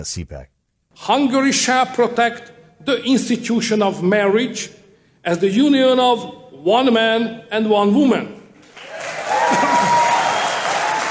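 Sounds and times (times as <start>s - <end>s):
speech: 0.0s - 8.4s
large conference crowd applauding in a standing ovation: 8.6s - 11.1s
scattered cheers and whoops from conference crowd: 8.8s - 11.1s.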